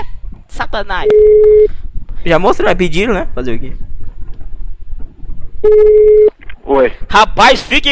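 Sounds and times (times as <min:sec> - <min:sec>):
low rumble: 0:00.0 - 0:07.1
speech: 0:00.6 - 0:03.9, 0:05.6 - 0:07.9
ringback tone from an outgoing phone call: 0:01.0 - 0:01.7, 0:05.6 - 0:06.3.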